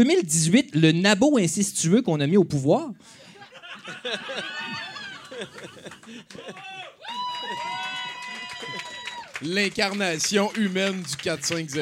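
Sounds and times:
speech: 0:00.0 - 0:03.2, 0:03.9 - 0:07.8, 0:09.4 - 0:11.7
audience laughter: 0:03.2 - 0:06.8
audience cheering and whooping: 0:04.3 - 0:09.7
audience applause: 0:04.4 - 0:11.7.

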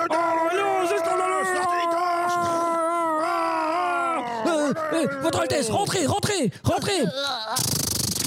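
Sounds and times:
crowd grumbling in discontent: 0:00.1 - 0:06.1
speech: 0:04.7 - 0:08.2.

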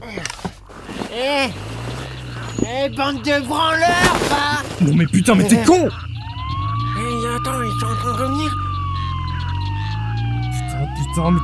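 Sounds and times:
speech: 0:01.2 - 0:01.7, 0:02.7 - 0:06.0, 0:07.4 - 0:08.6, 0:11.2 - 0:11.4
police car siren wailing: 0:05.0 - 0:11.4.

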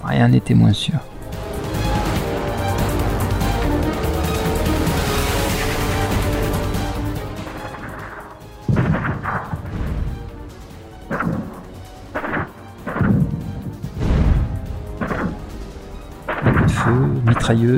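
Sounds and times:
speech: 0:00.1 - 0:01.2, 0:17.5 - 0:17.7
muffled explosions: 0:01.0 - 0:17.7.

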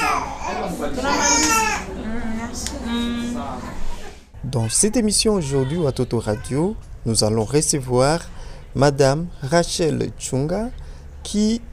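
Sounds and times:
several babies crying in a health center: 0:00.0 - 0:01.9
chatter: 0:00.0 - 0:11.7
speech: 0:00.7 - 0:11.7.

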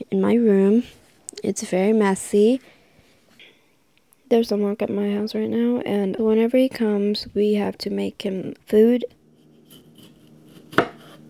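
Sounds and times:
speech: 0:00.1 - 0:02.8, 0:04.3 - 0:09.2
knife chopping tomatoes in a home kitchen: 0:09.4 - 0:11.2.

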